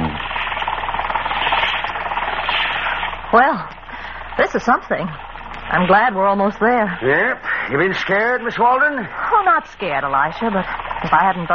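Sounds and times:
small boat engine chugging through thick fog: 0.0 - 11.5
speech: 3.3 - 3.8, 4.4 - 11.5.

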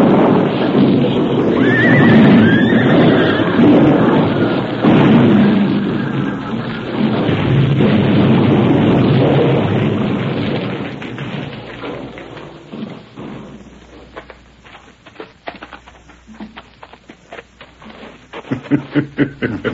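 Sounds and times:
explosion blast sealing a cave entrance: 0.0 - 14.2
rumbling decay of a cave entrance blast: 0.0 - 19.7
scattered thuds and taps: 2.1 - 19.7
laughter: 18.4 - 19.7.

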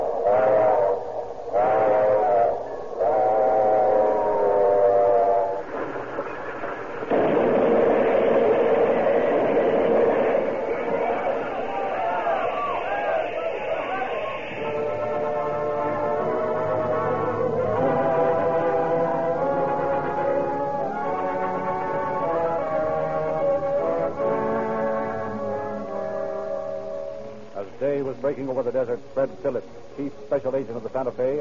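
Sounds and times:
passenger train roaring through the desert at night: 0.0 - 27.0
train engine whistle shrieking: 0.2 - 5.6, 10.7 - 27.5
speech: 28.7 - 29.7, 30.5 - 31.3.

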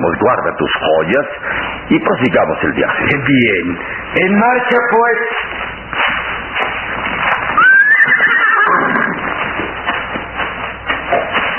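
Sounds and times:
speech: 0.0 - 5.6
steady rough noise: 0.0 - 11.5
horse neighing as a rider mounts it: 7.6 - 9.3.

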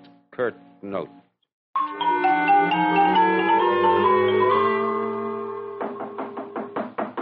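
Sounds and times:
speech: 0.4 - 1.2
sustained musical chord: 1.8 - 6.2
loud knocking on a door: 5.8 - 7.2.

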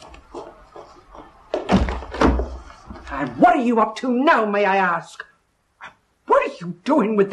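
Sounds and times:
knocking on a front door: 1.6 - 2.6
speech: 3.2 - 5.3, 6.6 - 7.3.

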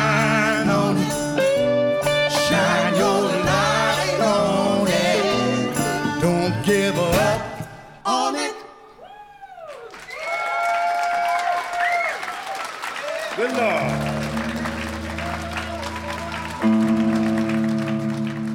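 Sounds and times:
person singing at a live concert: 0.0 - 9.1
crowd cheering at a live concert: 2.0 - 18.5
audience applause at a live concert: 8.0 - 18.5.

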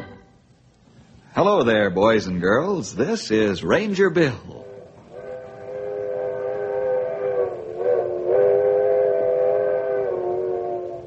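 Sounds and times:
speech: 1.4 - 4.7
old-fashioned coal-burning steam locomotive whistle: 4.6 - 11.0.

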